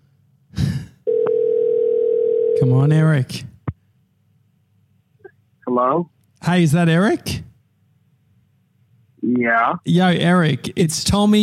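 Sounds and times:
phone line ringing tone of a call from Australia to a cell phone: 0:01.1 - 0:02.7
speech: 0:02.6 - 0:03.5, 0:05.8 - 0:07.5, 0:09.2 - 0:11.4.

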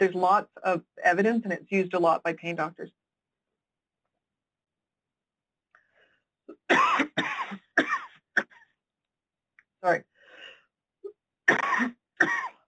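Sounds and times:
speech: 0:00.0 - 0:03.0, 0:09.8 - 0:10.1
harsh coughing: 0:06.5 - 0:08.6, 0:11.5 - 0:12.6.

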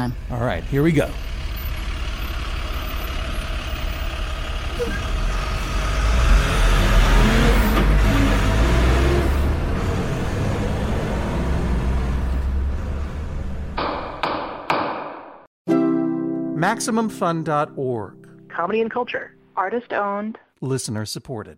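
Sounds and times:
speech: 0:00.0 - 0:01.3, 0:04.8 - 0:05.2, 0:16.6 - 0:21.5
truck engine rumbling as it pulls away onto the street: 0:00.0 - 0:14.4
sharp knocks: 0:13.8 - 0:15.5.

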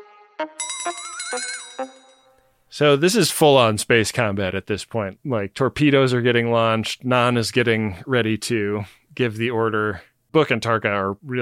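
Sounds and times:
speech: 0:00.4 - 0:02.0, 0:02.7 - 0:11.4
bright ringing bell-like chimes: 0:00.6 - 0:02.4.

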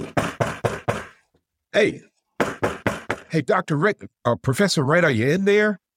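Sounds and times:
knocks on an office door, seemingly voiced as an imitation: 0:00.0 - 0:01.2, 0:02.4 - 0:03.3
speech: 0:01.8 - 0:02.1, 0:03.3 - 0:05.8.

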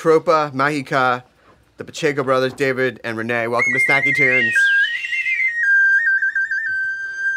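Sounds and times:
speech: 0:00.0 - 0:04.7
person whistling a sustained high tone: 0:03.6 - 0:07.3.

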